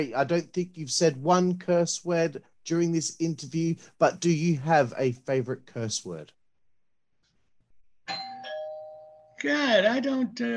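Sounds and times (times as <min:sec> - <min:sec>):
speech: 0:00.0 - 0:06.4, 0:09.4 - 0:10.5
doorbell ding-dong chime: 0:08.1 - 0:09.4.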